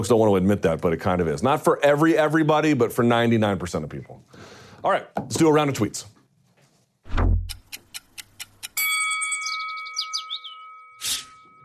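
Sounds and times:
speech: 0.0s - 6.2s
deep thump: 7.1s - 7.6s
ticking-clock sound effect: 7.4s - 8.8s
bright sustained chime with twittering flourishes: 8.8s - 11.6s.

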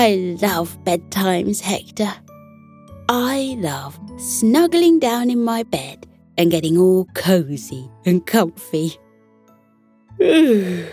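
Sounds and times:
speech: 0.0s - 2.2s, 3.1s - 9.0s, 10.2s - 10.9s
person yawning: 10.2s - 10.9s.

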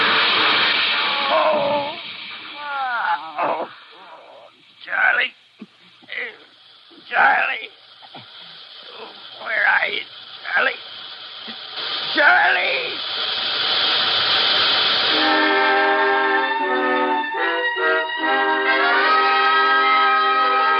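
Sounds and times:
harsh train steam hissing: 0.0s - 20.7s
long wavering train whistle blast: 15.0s - 20.7s.

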